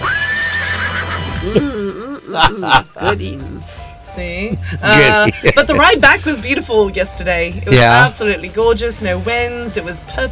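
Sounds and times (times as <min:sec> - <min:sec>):
horse neighing: 0:00.0 - 0:01.8
speech: 0:01.4 - 0:01.7, 0:02.3 - 0:10.3
laughter: 0:01.4 - 0:03.2, 0:04.5 - 0:06.2.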